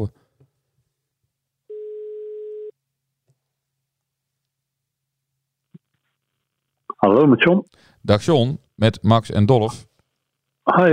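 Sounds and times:
telephone ringback tone while a call is being placed: 1.7s - 2.7s
speech: 7.0s - 9.9s, 10.7s - 10.9s.

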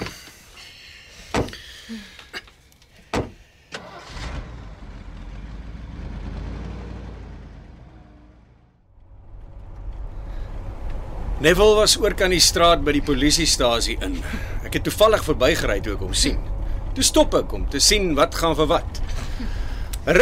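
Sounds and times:
car door thuds and clunks: 1.3s - 1.6s, 3.1s - 3.4s
speech: 1.9s - 2.2s, 11.4s - 20.1s
car engine starting and running: 3.2s - 20.1s.

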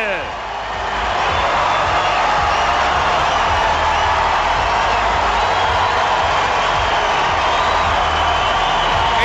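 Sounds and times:
packed arena crowd in Australia cheering in ovation for a tennis player: 0.0s - 9.2s.

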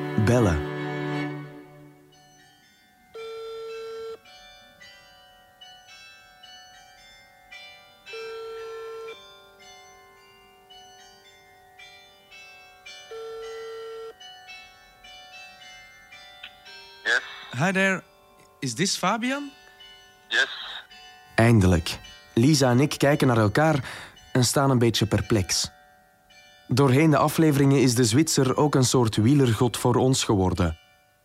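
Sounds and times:
church bells ringing: 0.0s - 31.2s
speech: 0.3s - 0.7s, 17.6s - 19.6s, 20.3s - 20.6s, 21.4s - 25.8s, 26.7s - 30.8s.

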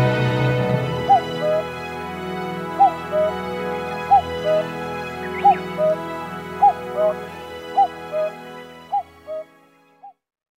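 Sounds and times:
common cuckoo calling at Zao in Japan: 0.8s - 1.9s, 2.6s - 9.5s.

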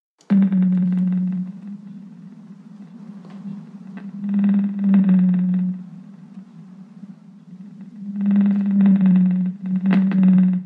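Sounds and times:
blue whale song moans: 0.3s - 10.6s.

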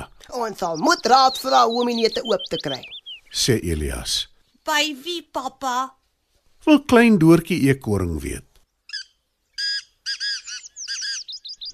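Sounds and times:
pheasant calling: 0.0s - 5.5s, 8.6s - 11.7s
speech: 0.4s - 6.0s, 6.6s - 8.5s.

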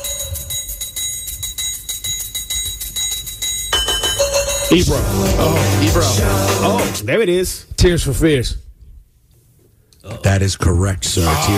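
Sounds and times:
bells ringing: 0.0s - 6.7s
speech: 4.7s - 8.6s, 10.2s - 11.5s.

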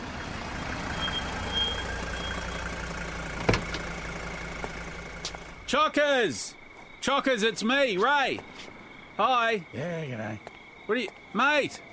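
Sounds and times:
vehicle engine idling: 0.0s - 5.7s
speech: 5.7s - 11.9s.

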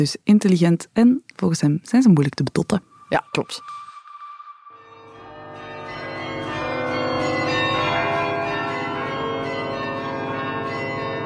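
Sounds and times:
speech: 0.0s - 3.8s
carillon bells ringing in the Kempen: 2.8s - 11.2s.

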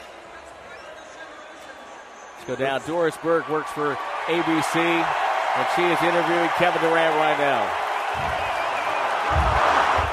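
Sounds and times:
speech: 2.4s - 8.6s, 9.3s - 9.6s
large arena crowd roaring and cheering: 2.6s - 10.1s
low thumps: 8.2s - 8.5s, 9.2s - 10.1s.

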